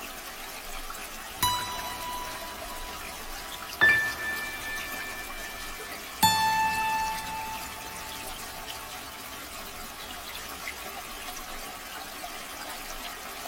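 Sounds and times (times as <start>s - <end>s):
running water flowing gently: 0.0s - 13.3s
bright ringing tones: 1.4s - 10.9s.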